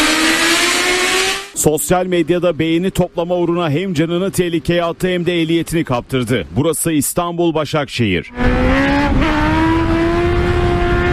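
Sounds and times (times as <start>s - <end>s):
motorcycle engine revving hard during a wheelie on a road in Başakşehir Istanbul: 0.0s - 1.6s, 8.3s - 11.1s
speech: 1.6s - 9.4s.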